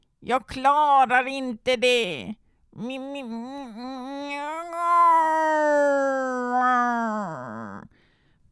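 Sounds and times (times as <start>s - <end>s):
speech: 0.2s - 7.7s
human voice imitating a cat meowing: 2.8s - 7.9s.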